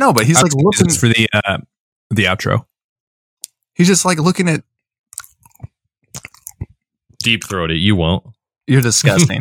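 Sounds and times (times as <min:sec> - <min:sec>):
speech: 0:00.0 - 0:02.7, 0:03.8 - 0:04.7, 0:07.2 - 0:09.3
mouth smacking: 0:05.2 - 0:06.7
person chewing a banana loudly: 0:05.2 - 0:06.7.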